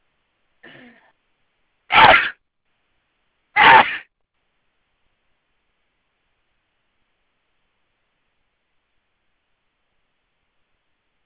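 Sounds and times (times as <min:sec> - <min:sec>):
person sneezing: 0:00.6 - 0:01.1, 0:01.9 - 0:02.4, 0:03.6 - 0:04.0.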